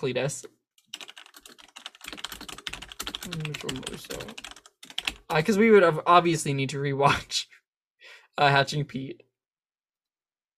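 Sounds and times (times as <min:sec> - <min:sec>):
speech: 0:00.0 - 0:00.6, 0:03.2 - 0:04.5, 0:05.3 - 0:07.4, 0:08.4 - 0:09.3
rapid typing on a computer keyboard: 0:00.8 - 0:05.4.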